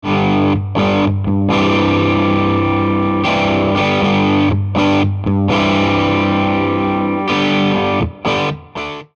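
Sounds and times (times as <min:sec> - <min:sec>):
overdriven amplifier at volume ten: 0:00.0 - 0:09.1.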